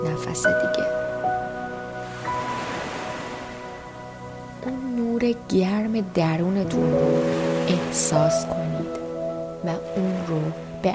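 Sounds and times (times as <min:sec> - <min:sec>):
speech: 0:00.0 - 0:01.1, 0:04.6 - 0:08.8, 0:09.6 - 0:10.9
soft sustained humming musical tones: 0:00.0 - 0:10.9
ocean waves washing onto the shore: 0:01.0 - 0:04.7, 0:06.6 - 0:10.9.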